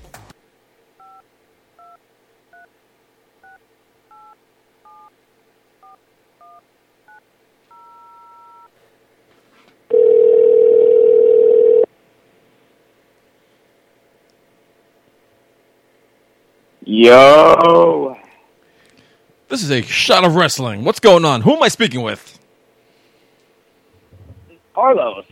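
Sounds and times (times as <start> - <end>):
telephone dial tone: 9.9 - 11.9
speech: 17.0 - 17.9, 19.7 - 22.4.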